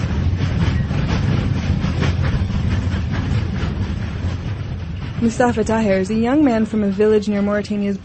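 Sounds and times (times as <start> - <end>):
freight train rumbling along the rails: 0.0 - 8.0
freight train wheels clattering over rail joints: 0.0 - 8.0
speech: 5.2 - 8.0.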